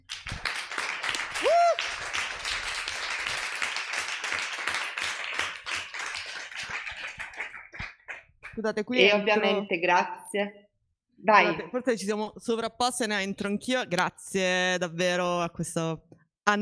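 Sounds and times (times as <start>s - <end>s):
audience applause at an event: 0.0s - 8.1s
speech: 8.6s - 10.6s, 11.2s - 16.6s.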